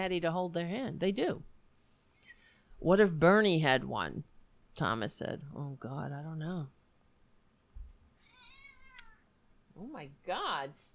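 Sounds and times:
speech: 0:00.0 - 0:01.5, 0:02.8 - 0:06.8, 0:09.8 - 0:10.9
cat meowing: 0:08.2 - 0:09.2.

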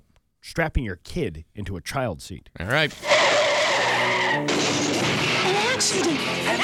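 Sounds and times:
speech: 0:00.5 - 0:03.2, 0:04.3 - 0:06.6
car tires screeching in an accident: 0:02.9 - 0:06.6.

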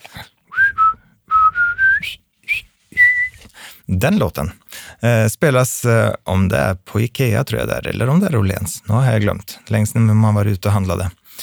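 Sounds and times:
person whistling a march-like melody: 0:00.5 - 0:03.4
speech: 0:04.0 - 0:11.2.

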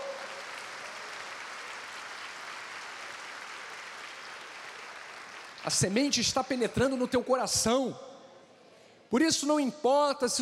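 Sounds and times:
audience applauding: 0:00.0 - 0:05.9
speech: 0:05.6 - 0:08.1, 0:09.1 - 0:10.4.

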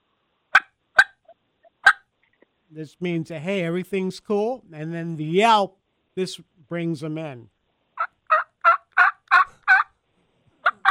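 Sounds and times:
turkey clucks blown on a diaphragm mouth call: 0:00.5 - 0:02.1, 0:08.0 - 0:10.0, 0:10.6 - 0:10.9
speech: 0:02.7 - 0:07.6.

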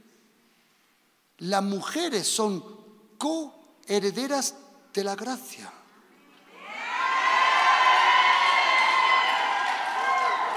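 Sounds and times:
speech: 0:01.4 - 0:05.8
audience at a church sermon shrieking and cheering: 0:06.5 - 0:10.5.

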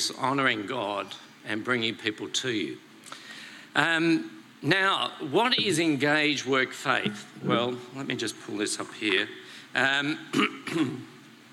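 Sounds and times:
speech: 0:00.0 - 0:11.1
nervous speaker clearing throat: 0:10.3 - 0:11.0.

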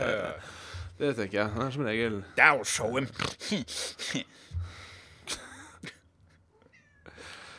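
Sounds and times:
speech: 0:00.4 - 0:05.4
cat meowing: 0:06.5 - 0:07.2.

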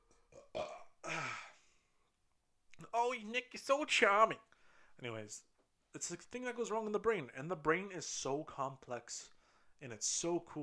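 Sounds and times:
loud burp: 0:00.3 - 0:01.5
speech: 0:03.0 - 0:10.6.

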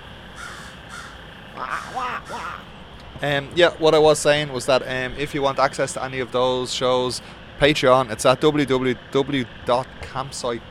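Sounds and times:
bird cawing outside: 0:00.3 - 0:02.8
speech: 0:01.6 - 0:10.6.

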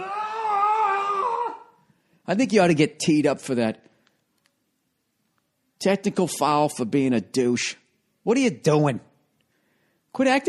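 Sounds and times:
man yelling in imitation of a triumphant scream after a fast-break dunk: 0:00.0 - 0:01.8
speech: 0:02.3 - 0:03.9, 0:05.8 - 0:09.1, 0:10.2 - 0:10.4.

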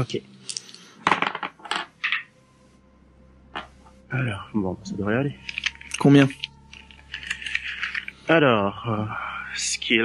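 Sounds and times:
speech: 0:00.0 - 0:00.6, 0:04.1 - 0:06.5, 0:08.3 - 0:10.0
dice rolling across a hard table in a tabletop role-playing game: 0:01.0 - 0:02.3.

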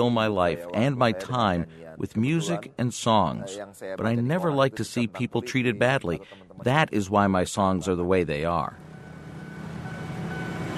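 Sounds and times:
speech: 0:00.0 - 0:08.8
faint metallic whine: 0:08.8 - 0:10.7
train rumbling past at a railway station in central Jakarta: 0:08.9 - 0:10.7.

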